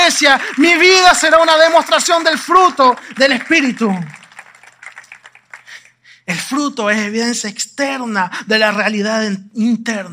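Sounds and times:
crowd applauding: 0:00.0 - 0:06.0
speech: 0:00.1 - 0:04.2, 0:06.3 - 0:10.1.

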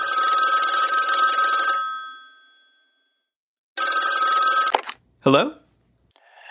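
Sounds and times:
telephone bell ringing with a bright trilling ring: 0:00.0 - 0:04.8
speech: 0:05.2 - 0:05.6.

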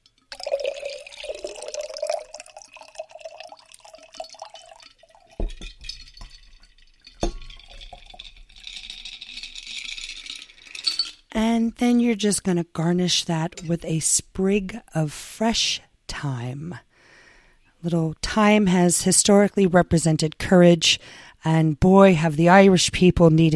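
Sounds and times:
shaken ginger cocktail trickling into a chilled cocktail glass: 0:00.0 - 0:11.3
sharp metallic clinks: 0:00.0 - 0:11.3
loose ice rattling: 0:00.1 - 0:11.3
speech: 0:11.7 - 0:16.9, 0:17.8 - 0:23.5.

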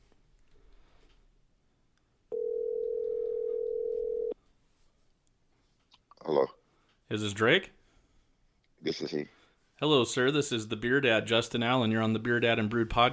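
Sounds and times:
faint noise: 0:00.0 - 0:13.1
telephone dial tone: 0:02.3 - 0:04.4
speech: 0:06.3 - 0:07.8, 0:08.8 - 0:13.1.

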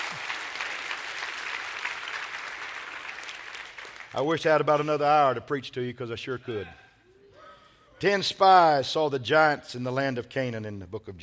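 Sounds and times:
audience clapping: 0:00.0 - 0:04.4
speech: 0:04.1 - 0:06.8, 0:08.0 - 0:11.2.

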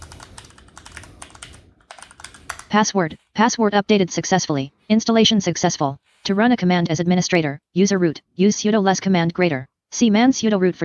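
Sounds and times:
computer keyboard typing a new password: 0:00.0 - 0:02.9
speech: 0:02.7 - 0:10.8.

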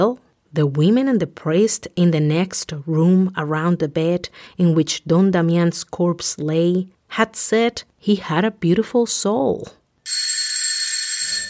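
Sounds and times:
speech: 0:00.0 - 0:09.8
loud electric doorbell ringing: 0:10.1 - 0:11.4.

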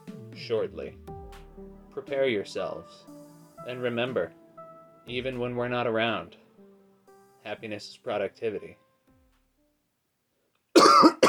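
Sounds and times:
speech: 0:00.5 - 0:04.4, 0:05.0 - 0:06.4, 0:07.4 - 0:08.8
harsh throaty cough: 0:10.8 - 0:11.2.

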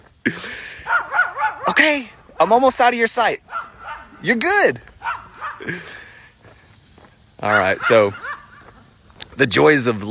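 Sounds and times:
dog barking and yipping: 0:00.8 - 0:01.8, 0:03.5 - 0:04.2, 0:05.0 - 0:05.7, 0:07.8 - 0:08.6
speech: 0:01.8 - 0:03.5, 0:04.2 - 0:04.9, 0:05.6 - 0:06.0, 0:07.4 - 0:08.3, 0:09.4 - 0:10.0.

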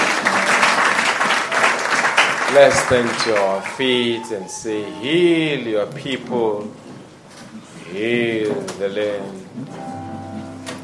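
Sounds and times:
audience at a church service applauding: 0:00.0 - 0:05.4
speech: 0:02.6 - 0:06.9, 0:07.9 - 0:09.8.

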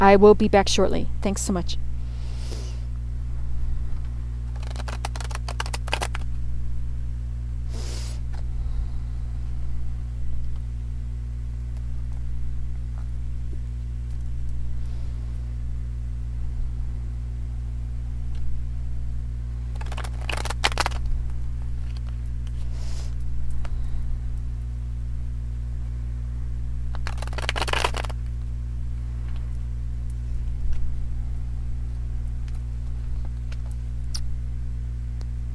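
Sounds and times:
speech: 0:00.0 - 0:01.8
steady low electrical hum: 0:00.0 - 0:35.5
deck of guidance cards being shuffled with crisp riffling: 0:04.5 - 0:06.4, 0:19.7 - 0:21.2, 0:26.9 - 0:28.3.

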